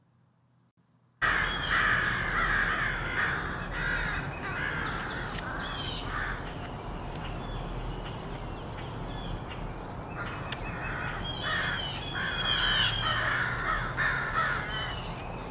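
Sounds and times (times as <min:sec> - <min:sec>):
crows cawing in treetops of an urban park: 0:01.2 - 0:06.6, 0:09.5 - 0:15.1
birds chirping in an urban park: 0:01.2 - 0:15.4
low rumble of morning traffic: 0:01.2 - 0:15.4.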